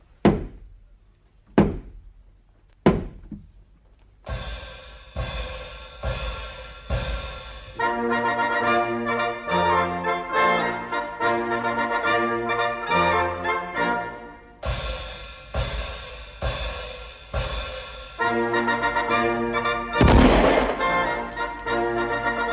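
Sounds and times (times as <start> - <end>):
heavy thuds of a person running against a door: 0.2 - 0.7, 1.5 - 2.0, 2.8 - 3.5
music: 1.6 - 22.5.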